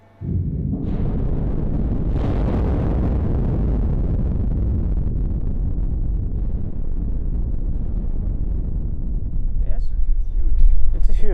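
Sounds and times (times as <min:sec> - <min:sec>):
rock blasting explosion in a quarry: 0:00.2 - 0:11.3.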